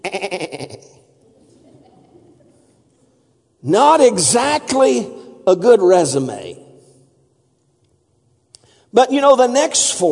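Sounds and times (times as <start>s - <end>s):
sheep bleating: 0.0s - 0.8s
speech: 3.7s - 6.6s, 8.9s - 10.1s.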